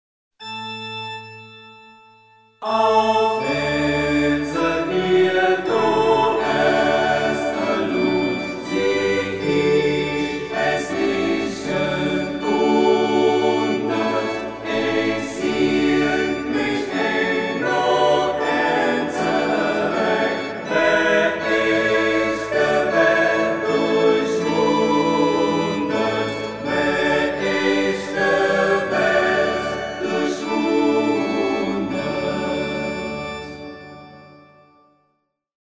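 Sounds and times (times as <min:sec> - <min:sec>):
choir singing: 0:02.6 - 0:34.3.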